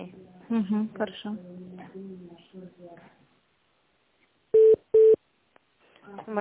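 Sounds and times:
speech: 0.0 - 3.2, 6.1 - 6.4
telephone busy signal electronic tone bursts: 4.6 - 5.2.

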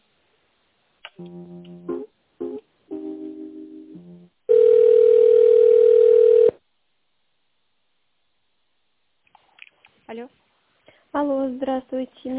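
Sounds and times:
speech: 1.2 - 1.7, 11.5 - 12.3
telephone line tones while a call is being connected: 4.5 - 6.6.

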